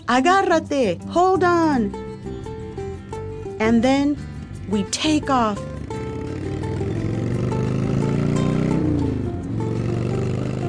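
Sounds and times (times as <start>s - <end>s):
speech: 0.1s - 2.0s, 3.6s - 5.7s
motorcycle engine rumbling and revving: 2.3s - 10.6s.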